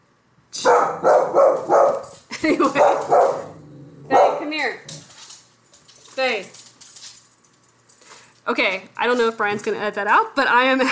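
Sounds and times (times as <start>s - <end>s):
dog barking: 0.6s - 2.1s, 2.8s - 4.6s
speech: 2.4s - 3.2s, 8.5s - 10.8s.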